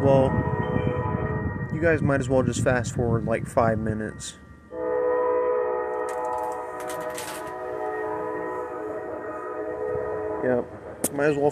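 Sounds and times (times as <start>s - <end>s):
loud train horn blaring: 0.0s - 1.8s, 4.7s - 11.5s
speech: 0.1s - 0.6s, 1.8s - 4.4s, 10.5s - 11.5s.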